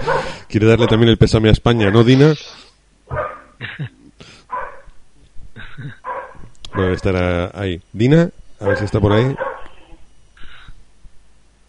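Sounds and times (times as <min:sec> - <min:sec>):
dog barking: 0:00.0 - 0:01.0, 0:03.1 - 0:03.6, 0:04.5 - 0:05.0, 0:06.0 - 0:07.1, 0:08.6 - 0:10.0
speech: 0:00.1 - 0:04.0, 0:06.7 - 0:09.5.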